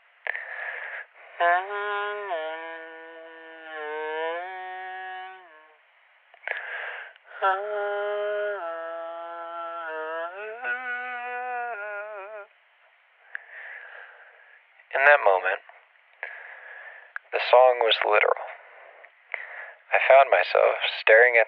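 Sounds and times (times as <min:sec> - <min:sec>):
speech: 0:01.4 - 0:01.8, 0:07.4 - 0:08.0, 0:15.0 - 0:15.6, 0:17.5 - 0:18.5, 0:20.0 - 0:21.4
person humming a slow melody: 0:01.4 - 0:05.8, 0:07.3 - 0:12.6.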